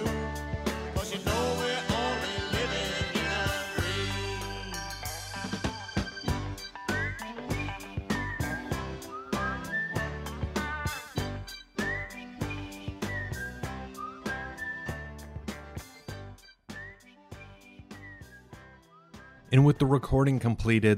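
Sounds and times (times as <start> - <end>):
whistled melody: 0.0 - 20.0
speech: 19.5 - 20.9.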